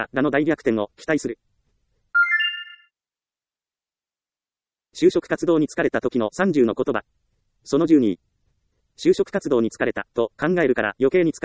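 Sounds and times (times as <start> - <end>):
speech: 0.0 - 1.6, 5.0 - 8.3, 9.0 - 11.4
electronic phone ringtone for incoming call: 2.2 - 2.9.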